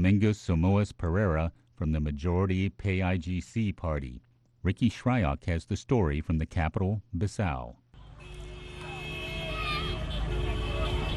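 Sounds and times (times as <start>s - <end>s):
speech: 0.0s - 7.8s
cars passing the presidential palace in Bissau: 8.0s - 11.1s.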